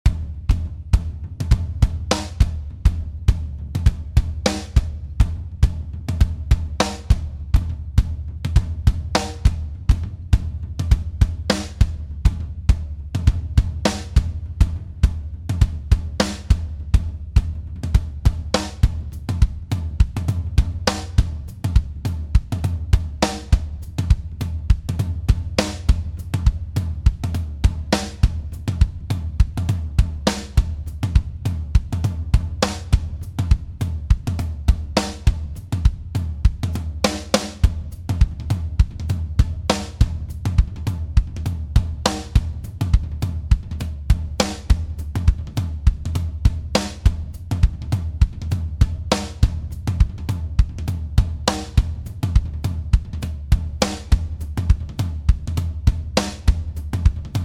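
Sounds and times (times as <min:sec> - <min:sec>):
acoustic drums: 0:00.0 - 0:57.4.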